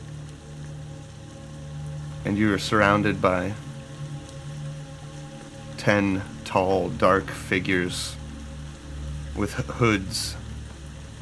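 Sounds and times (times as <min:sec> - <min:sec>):
pouring rain on grass and mud: 0:00.0 - 0:11.2
speech: 0:02.2 - 0:03.7, 0:05.8 - 0:08.2, 0:09.4 - 0:10.4.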